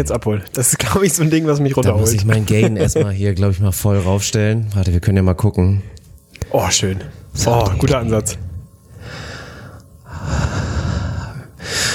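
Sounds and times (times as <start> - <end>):
speech: 0.0 - 8.4
laughter: 1.8 - 4.2
deep ASMR breaths blown into a microphone: 8.4 - 11.9.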